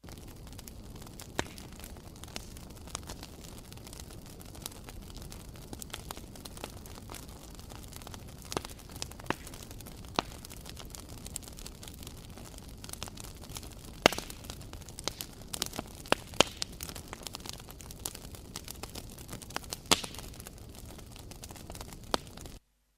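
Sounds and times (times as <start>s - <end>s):
campfire crackling with roar of flames: 0.0s - 22.6s
sharp pops and snaps from a campfire: 1.0s - 3.4s, 7.9s - 11.4s, 13.0s - 20.4s.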